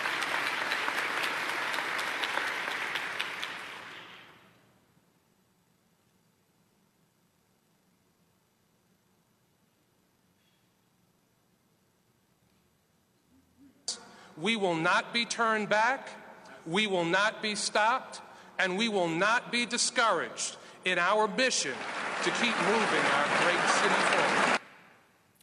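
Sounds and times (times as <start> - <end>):
audience applause for city officials during a speech: 0.0 - 4.3, 21.0 - 24.7
speech: 14.4 - 24.6.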